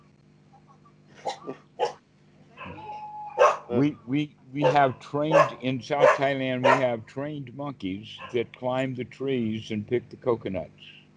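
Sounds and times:
dog barking: 0:03.4 - 0:03.7, 0:04.6 - 0:06.9
speech: 0:03.7 - 0:11.0.

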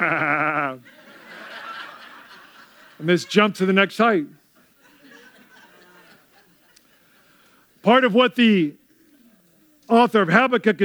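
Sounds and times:
human voice imitating a goat bleating: 0:00.0 - 0:00.8
laughter: 0:00.0 - 0:07.9
faint low noise: 0:00.0 - 0:10.8
speech: 0:03.0 - 0:04.4, 0:07.9 - 0:08.8, 0:09.9 - 0:10.8.

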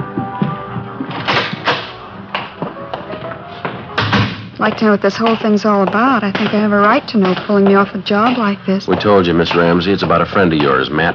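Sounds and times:
side door at a club opening and closing: 0:00.4 - 0:04.9
door thud: 0:01.1 - 0:02.6, 0:04.0 - 0:04.9
latch-like knock: 0:01.1 - 0:03.1, 0:03.9 - 0:05.5
speech: 0:04.6 - 0:11.1.

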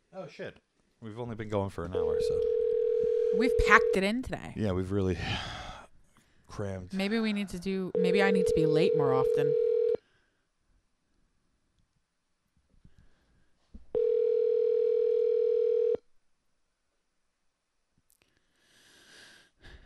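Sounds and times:
speech: 0:00.2 - 0:02.6, 0:03.3 - 0:05.6, 0:06.5 - 0:09.7
telephone dial tone: 0:02.4 - 0:04.0, 0:08.0 - 0:10.0, 0:14.0 - 0:16.0.

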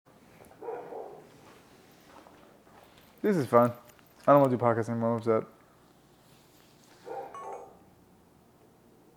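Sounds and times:
dog barking: 0:00.6 - 0:01.3, 0:07.0 - 0:07.9
speech: 0:03.2 - 0:05.6.

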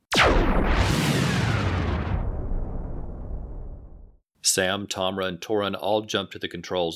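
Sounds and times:
giant spaceship firing weapons at a space station: 0:00.1 - 0:04.1
speech: 0:04.5 - 0:06.9.

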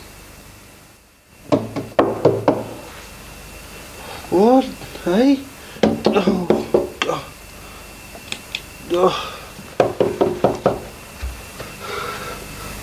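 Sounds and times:
wooden raps on a door: 0:01.5 - 0:02.8, 0:05.8 - 0:07.1, 0:09.8 - 0:10.9
speech: 0:04.3 - 0:05.5, 0:06.1 - 0:06.5, 0:08.9 - 0:09.4.

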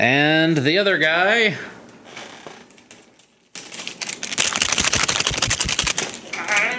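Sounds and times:
speech: 0:00.0 - 0:01.8
paper shuffling while drawing a contest winner: 0:03.6 - 0:06.7.

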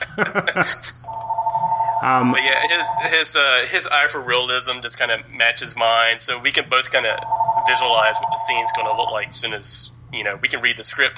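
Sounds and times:
laughter: 0:00.0 - 0:01.1, 0:02.5 - 0:04.1
speech: 0:00.2 - 0:01.2, 0:02.0 - 0:11.1
telephone ringing with trilling chimes and electronic tone: 0:01.1 - 0:03.8, 0:06.9 - 0:09.5.

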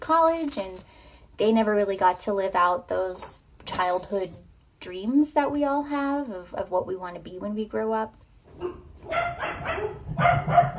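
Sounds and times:
speech: 0:00.1 - 0:10.7
dogs barking: 0:08.5 - 0:10.7.

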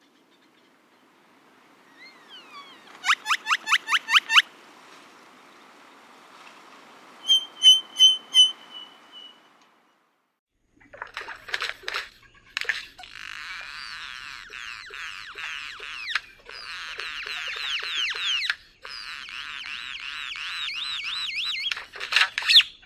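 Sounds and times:
male Great-tailed Grackle territory song with metallic rattles: 0:00.0 - 0:10.0, 0:10.7 - 0:22.8
rising whistles in noisy background: 0:01.8 - 0:04.5, 0:07.2 - 0:09.6.

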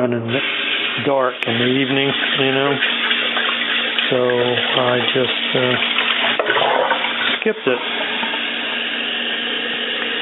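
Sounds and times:
speech: 0:00.0 - 0:03.0, 0:04.1 - 0:06.0, 0:07.4 - 0:08.0
water pouring from a tap into a pot for a coffee maker: 0:00.0 - 0:10.2.

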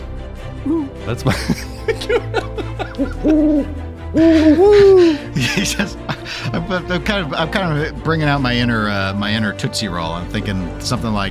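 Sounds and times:
speech: 0:00.6 - 0:11.2
laughter: 0:01.2 - 0:07.6
owl hooting: 0:03.0 - 0:05.0.

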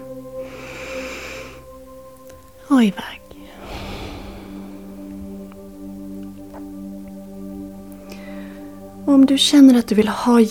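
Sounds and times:
soft steady musical drone: 0:00.0 - 0:10.4
deep breath drawn in through the nose: 0:00.4 - 0:01.7, 0:03.3 - 0:05.9, 0:08.0 - 0:08.8
speech: 0:02.7 - 0:03.2, 0:09.0 - 0:10.4.

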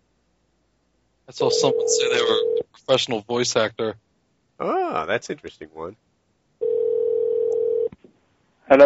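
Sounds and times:
speech: 0:01.3 - 0:04.0, 0:04.6 - 0:06.0, 0:08.7 - 0:08.8
telephone dial tone: 0:06.6 - 0:07.9.

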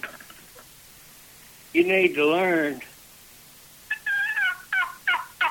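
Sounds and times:
speech: 0:01.8 - 0:02.9
turkey yelps played on a hand-held turkey call: 0:03.9 - 0:05.4.

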